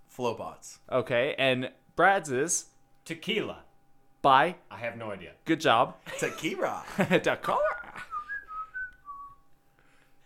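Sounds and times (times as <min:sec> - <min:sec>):
speech: 0:00.2 - 0:08.1
person whistling a short melodic tune: 0:08.1 - 0:09.4.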